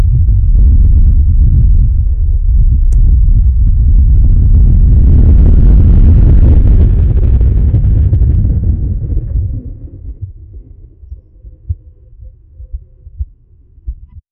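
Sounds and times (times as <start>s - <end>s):
earthquake rumbling: 0.0s - 14.2s.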